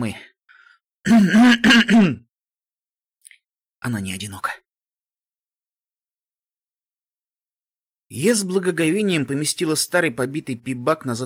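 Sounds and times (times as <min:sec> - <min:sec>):
speech: 0:00.0 - 0:00.2, 0:01.0 - 0:02.2, 0:03.8 - 0:04.6, 0:08.1 - 0:11.2
throaty voiced coughs: 0:01.0 - 0:02.3.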